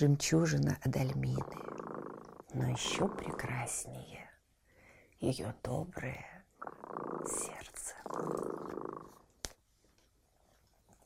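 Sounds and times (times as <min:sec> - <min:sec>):
speech: 0:00.0 - 0:01.8, 0:02.5 - 0:04.3, 0:05.2 - 0:06.4, 0:07.2 - 0:08.5
cat purring: 0:01.0 - 0:04.4, 0:05.7 - 0:09.4.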